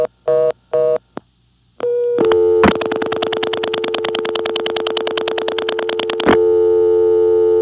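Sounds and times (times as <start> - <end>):
telephone tones: 1.8 - 6.5
telephone dial tone: 2.1 - 7.5
telephone no-test clicks: 2.2 - 6.4.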